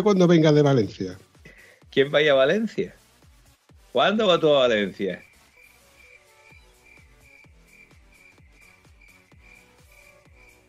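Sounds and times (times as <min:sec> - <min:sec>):
speech: 0:00.0 - 0:01.3, 0:01.9 - 0:03.0, 0:03.9 - 0:05.3
cricket chirping: 0:05.1 - 0:10.6.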